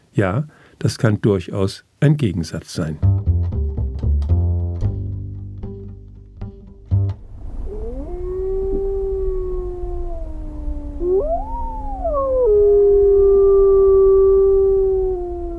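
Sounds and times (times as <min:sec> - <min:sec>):
speech: 0:00.2 - 0:03.1
percussive plucked notes: 0:03.0 - 0:07.4
several wolves howling together: 0:07.7 - 0:15.5.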